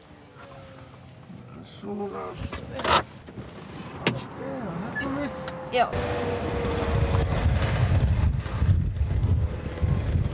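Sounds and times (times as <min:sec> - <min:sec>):
speech: 0:01.8 - 0:03.5, 0:04.4 - 0:06.9
strong wind buffeting the microphone outdoors: 0:05.9 - 0:10.3.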